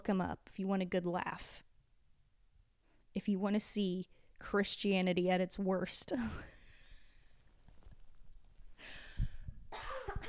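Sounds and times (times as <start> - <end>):
speech: 0.0 - 1.7, 3.2 - 6.6
faint rustling: 6.9 - 8.8
person coughing: 9.7 - 10.2.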